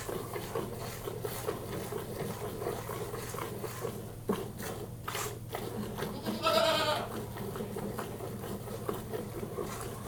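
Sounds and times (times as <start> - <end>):
low background hum: 0.0 - 10.0
goat bleating during milking: 6.0 - 7.2.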